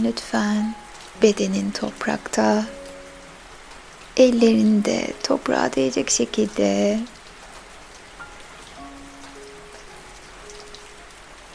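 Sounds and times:
speech: 0.0 - 2.8, 4.2 - 7.2
steady rain falling on the ground: 0.0 - 11.5.

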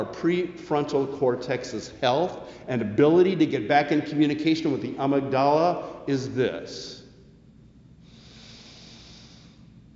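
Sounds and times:
speech: 0.0 - 7.0
slow deep breath drawn in and let out: 2.4 - 2.7, 7.9 - 9.9.

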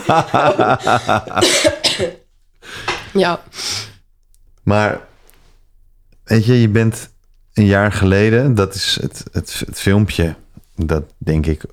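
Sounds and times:
laughter: 0.0 - 3.2
speech: 0.0 - 3.9, 4.7 - 5.1, 6.3 - 11.7
person coughing: 0.6 - 3.1.

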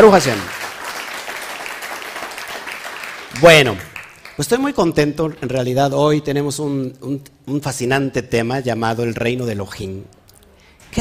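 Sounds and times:
speech: 0.0 - 0.6, 3.4 - 10.2
crowd applauding: 0.0 - 4.7.

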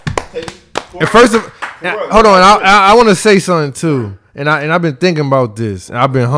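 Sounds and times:
hands clapping: 0.0 - 1.9
people cheering: 0.0 - 3.0
speech: 0.3 - 6.3.

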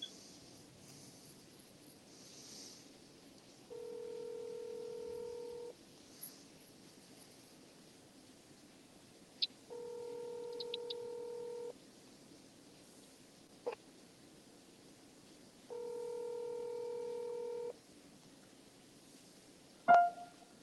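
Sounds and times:
unanswered phone call ringback tones: 3.7 - 5.7, 9.7 - 11.7, 15.7 - 17.7, 19.9 - 20.4.

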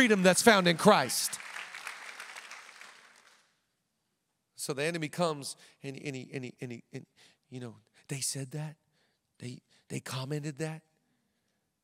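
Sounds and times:
speech: 0.0 - 1.4, 4.6 - 8.8, 9.4 - 10.9
audience clapping: 0.0 - 3.5.

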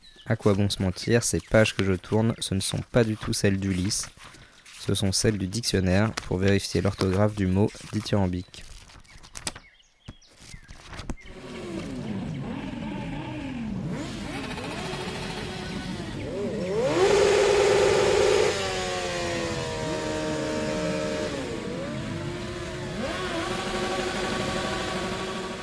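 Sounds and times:
speech: 0.3 - 8.7
motorcycle engine revving: 11.2 - 25.6.

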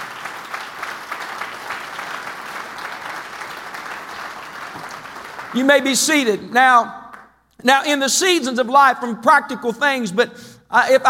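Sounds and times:
congregation clapping hands in applause: 0.0 - 5.9
speech: 5.5 - 7.0, 7.6 - 11.0.

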